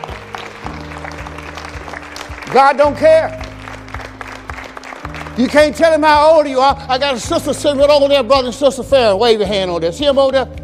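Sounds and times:
audience clapping hands: 0.0s - 7.4s
speech: 2.5s - 3.4s, 5.4s - 10.6s.

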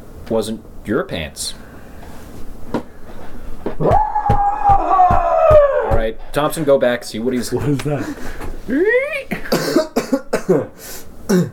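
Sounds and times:
speech: 0.3s - 1.6s, 3.8s - 4.1s, 6.1s - 9.9s, 10.5s - 11.5s
rising strained vocal cry: 3.8s - 6.0s
harsh raspy coughs: 9.3s - 11.5s.

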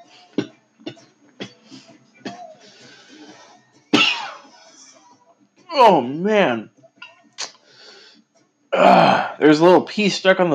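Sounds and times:
person coughing: 4.0s - 4.5s
speech: 5.7s - 6.7s, 8.7s - 10.5s.

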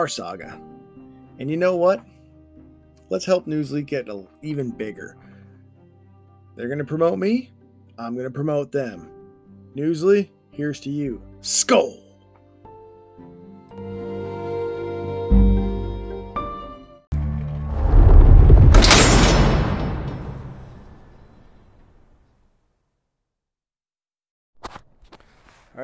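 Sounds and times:
speech: 0.0s - 0.7s, 1.4s - 2.2s, 3.1s - 5.3s, 6.6s - 9.1s, 9.8s - 12.0s
heavy vault door slamming shut: 17.7s - 21.3s.

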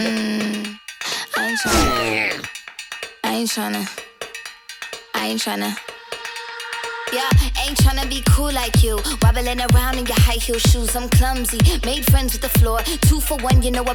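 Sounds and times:
sliding expressive sung vocal in an upbeat pop song: 0.0s - 2.5s, 7.0s - 13.9s
punchy evenly spaced beats: 1.3s - 13.9s
speech: 1.6s - 2.5s, 3.4s - 4.0s, 5.2s - 5.9s, 7.1s - 13.9s.

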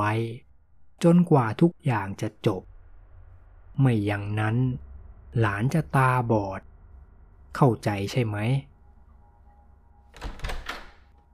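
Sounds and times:
speech: 0.0s - 2.7s, 3.8s - 6.7s, 7.6s - 8.7s
wooden room door opening: 10.0s - 11.3s.

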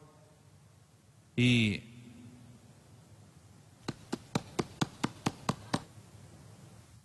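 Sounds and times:
speech: 1.4s - 1.9s
knocking on a wooden door: 3.9s - 5.9s.

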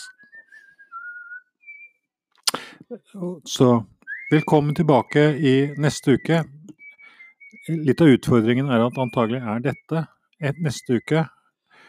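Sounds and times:
woman whistling a lilting waltz tune: 0.0s - 2.0s, 4.1s - 4.5s, 6.7s - 8.0s
speech: 2.9s - 6.6s, 7.7s - 11.4s.

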